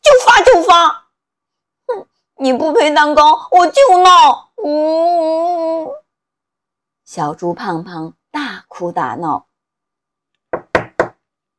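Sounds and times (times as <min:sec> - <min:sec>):
speech: 0:02.5 - 0:06.0, 0:07.1 - 0:09.5
duckling knocking on a door in a children's story: 0:10.5 - 0:11.2.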